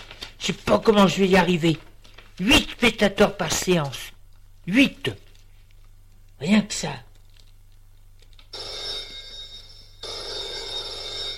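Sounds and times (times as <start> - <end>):
speech: 0.5 - 4.0, 4.7 - 5.2, 6.4 - 7.0
telephone bell ringing: 8.6 - 11.3.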